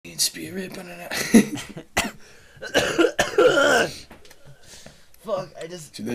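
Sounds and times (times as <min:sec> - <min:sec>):
speech: 0:00.2 - 0:03.0, 0:05.3 - 0:06.1
person coughing into microphone: 0:01.6 - 0:04.1.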